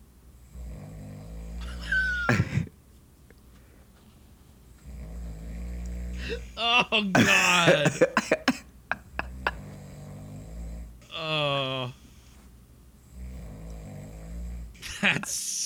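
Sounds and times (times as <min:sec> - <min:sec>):
person snoring with rattling snort: 0:00.5 - 0:02.7, 0:04.8 - 0:12.4, 0:13.1 - 0:15.6
speech: 0:06.9 - 0:08.2.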